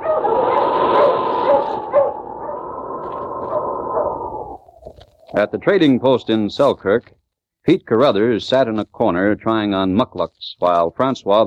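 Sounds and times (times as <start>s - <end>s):
dog barking and yipping: 0.0s - 2.8s, 3.4s - 4.4s
speech: 5.4s - 11.4s.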